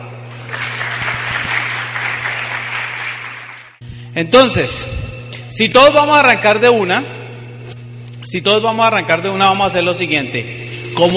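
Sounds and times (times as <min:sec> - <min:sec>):
low hum: 0:00.0 - 0:11.1
audience applause: 0:00.3 - 0:03.8
speech: 0:04.2 - 0:07.2, 0:08.3 - 0:11.1.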